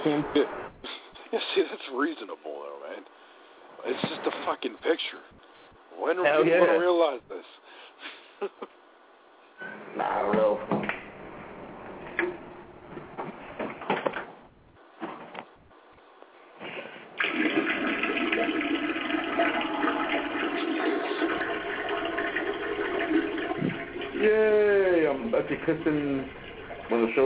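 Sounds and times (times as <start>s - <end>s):
speech: 0.0s - 3.2s, 3.8s - 8.8s, 9.6s - 10.8s, 25.4s - 27.2s
person urinating into a toilet: 17.2s - 27.2s.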